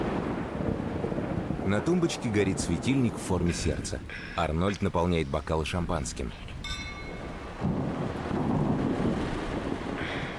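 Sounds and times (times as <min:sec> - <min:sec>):
deep rolling thunder in a thunderstorm: 0:00.0 - 0:04.2, 0:06.6 - 0:10.3
steady rain-like hiss: 0:00.0 - 0:10.3
speech: 0:01.7 - 0:06.5.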